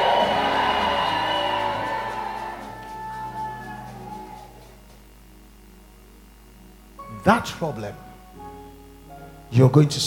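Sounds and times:
large audience shouting a thunderous amen: 0.0s - 4.7s
lingering sustained musical tone: 0.0s - 10.0s
speech: 7.2s - 8.1s, 9.5s - 10.0s.

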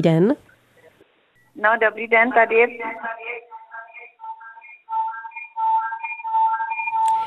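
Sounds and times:
speech: 0.0s - 0.4s, 1.6s - 3.4s
person talking on a phone line: 1.6s - 4.4s
piercing feedback whistle from a caller's radio on a phone line: 3.2s - 7.2s.

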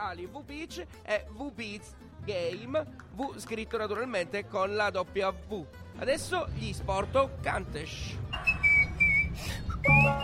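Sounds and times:
speech: 0.0s - 8.6s, 9.4s - 10.2s
high whistle notes at an event: 8.3s - 10.2s.

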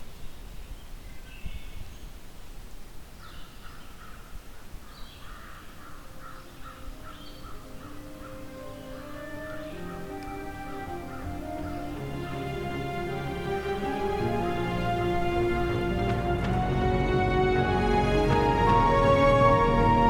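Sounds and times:
outdoor hiss: 0.0s - 20.0s
distant crow cawing: 3.2s - 14.5s.

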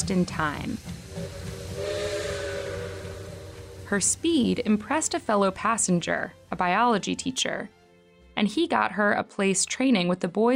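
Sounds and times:
steam hissing: 0.0s - 6.3s
rolling rail noise: 0.0s - 6.6s
speech: 0.1s - 1.5s, 3.9s - 7.8s, 8.4s - 10.5s
train whistle blowing: 1.0s - 5.7s.

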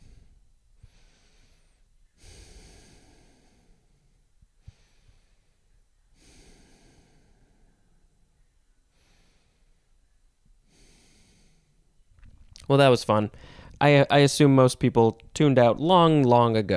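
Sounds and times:
slow steady breathing in and out through the nose: 0.0s - 12.0s, 13.3s - 13.8s
speech: 12.7s - 16.7s.

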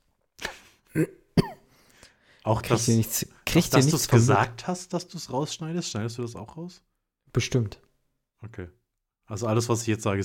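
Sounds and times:
person clearing their throat: 0.4s - 1.7s
speech: 0.9s - 1.2s, 2.4s - 10.2s
person coughing: 0.9s - 1.7s
faint breathy trailing sound: 1.6s - 2.5s.

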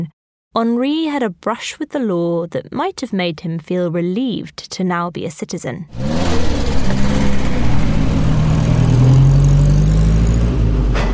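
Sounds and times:
speech: 0.0s - 7.2s
early motor car engine droning on a country lane: 5.9s - 11.1s.

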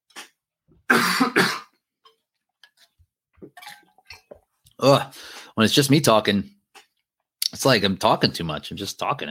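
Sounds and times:
person coughing: 0.9s - 1.8s
speech: 4.8s - 6.6s, 7.6s - 9.2s.

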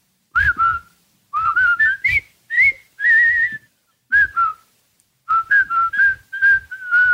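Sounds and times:
several men whistling a jaunty marching tune together: 1.4s - 4.6s, 5.3s - 7.1s.

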